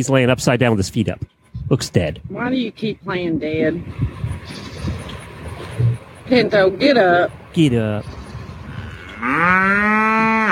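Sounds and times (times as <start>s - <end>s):
speech: 0.0s - 4.7s, 6.3s - 8.2s, 9.2s - 10.5s
cow mooing: 8.5s - 10.5s.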